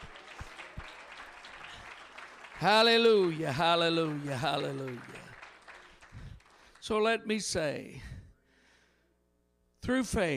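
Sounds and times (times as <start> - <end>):
church audience clapping during a service: 0.0 - 7.3
speech: 2.6 - 5.2, 6.9 - 8.2, 9.8 - 10.3.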